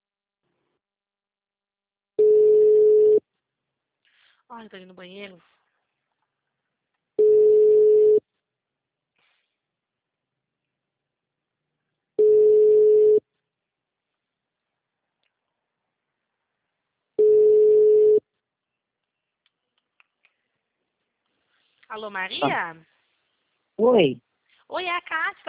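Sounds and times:
telephone line tone after a dropped call: 0:02.2 - 0:03.2, 0:07.2 - 0:08.2, 0:12.2 - 0:13.2, 0:17.2 - 0:18.2
speech: 0:04.6 - 0:05.6, 0:21.9 - 0:22.9, 0:23.8 - 0:25.4.

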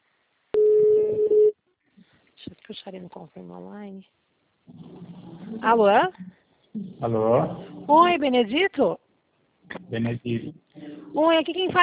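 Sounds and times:
faint noise: 0:00.0 - 0:11.8
ringback tone on an outgoing telephone call: 0:00.6 - 0:01.5
speech: 0:02.9 - 0:09.0, 0:09.9 - 0:10.6, 0:11.2 - 0:11.8.

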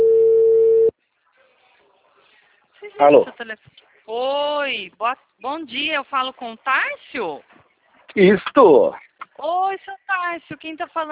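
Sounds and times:
telephone ringback tone while a call is being placed: 0:00.0 - 0:00.9
speech: 0:03.0 - 0:07.6, 0:08.2 - 0:11.1.

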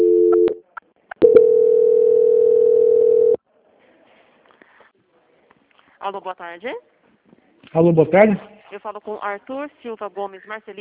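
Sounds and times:
telephone line tone during a call transfer: 0:00.0 - 0:00.6, 0:01.2 - 0:03.4
speech: 0:06.0 - 0:06.9, 0:07.7 - 0:10.8.

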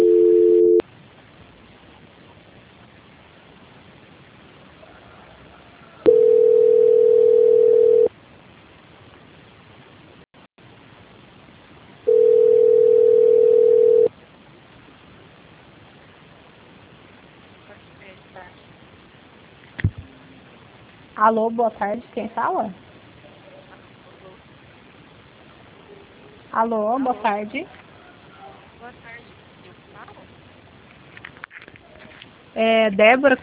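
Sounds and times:
telephone ringback tone during a call transfer: 0:00.0 - 0:00.8, 0:06.1 - 0:08.1, 0:12.1 - 0:14.1
speech: 0:21.2 - 0:22.8, 0:26.6 - 0:27.8, 0:32.6 - 0:33.4.

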